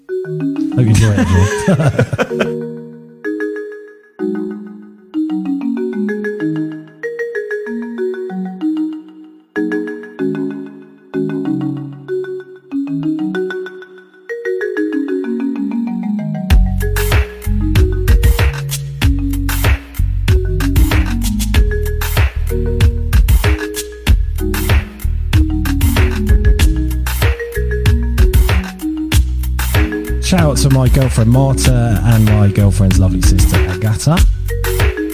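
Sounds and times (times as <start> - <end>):
bright melodic phone ringtone with punchy beats: 0.0 - 35.1
speech: 0.3 - 2.7, 30.7 - 34.3
laughter: 0.8 - 2.6.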